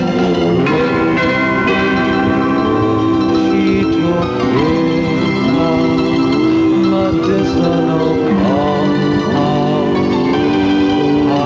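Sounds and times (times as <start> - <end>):
church bells ringing: 0.0 - 11.4.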